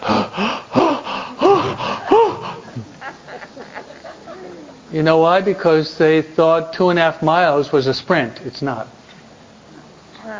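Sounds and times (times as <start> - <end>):
person imitating heavy panting of young men after a running race: 0.0 - 3.0
laughter: 0.7 - 4.9
speech: 4.9 - 9.0.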